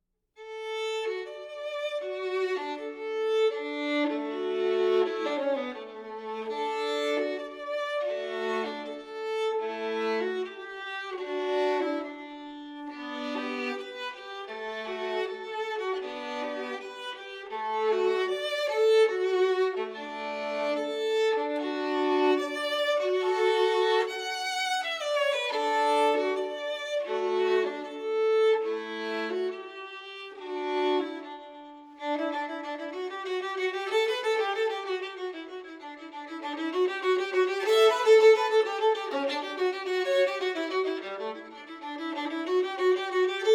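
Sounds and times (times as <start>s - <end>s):
solo violin: 0.4s - 43.5s.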